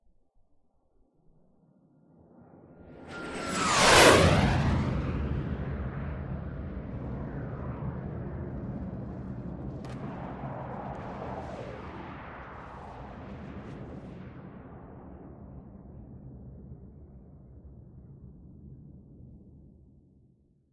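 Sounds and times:
low aircraft flyby over a canyon: 0:02.6 - 0:15.8.

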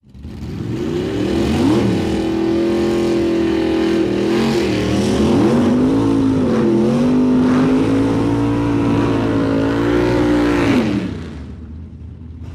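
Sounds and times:
dragster drag race burnout: 0:00.0 - 0:12.5.

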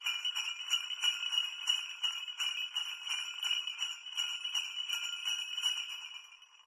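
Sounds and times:
sleigh bells shaken rhythmically: 0:00.0 - 0:06.6.

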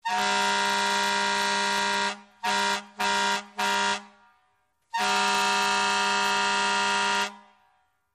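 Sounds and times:
fire truck air horn: 0:00.0 - 0:08.0.

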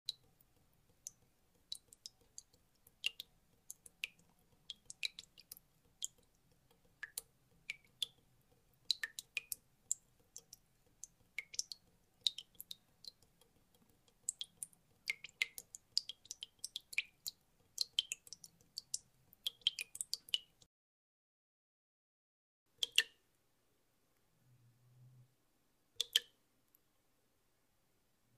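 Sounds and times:
water dripping in a kitchen: 0:00.1 - 0:20.7, 0:22.7 - 0:23.3, 0:26.0 - 0:26.4.

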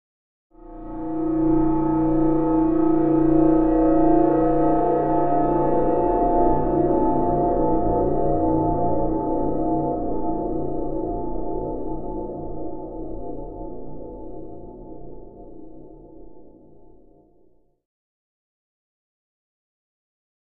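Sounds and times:
ominous metallic music bed: 0:00.6 - 0:14.1.

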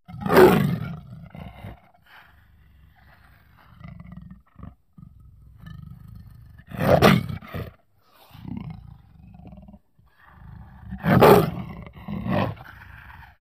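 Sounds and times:
low ferocious leopard roar: 0:00.0 - 0:13.4.

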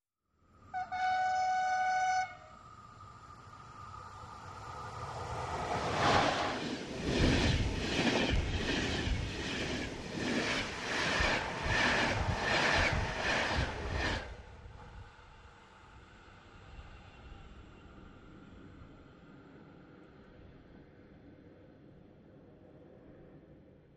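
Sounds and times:
European electric train: 0:00.6 - 0:23.3.

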